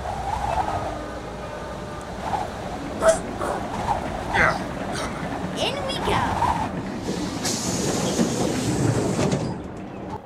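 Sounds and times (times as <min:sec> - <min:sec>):
train rumbling on rails: 0:00.0 - 0:10.2.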